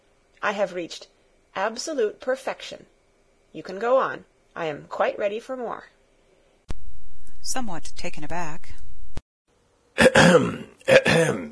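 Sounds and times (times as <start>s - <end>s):
speech: 0.4s - 2.9s, 3.5s - 6.0s, 7.4s - 8.8s, 10.2s - 11.5s
harsh throaty coughing: 10.0s - 11.5s.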